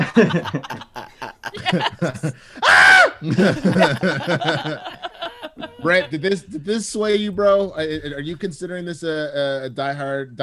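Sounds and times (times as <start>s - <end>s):
people chattering and chuckling: 0.0s - 2.6s, 3.2s - 6.7s
speech: 0.2s - 0.9s, 1.6s - 5.0s, 5.8s - 10.4s
screaming goat sound effect: 2.6s - 3.3s.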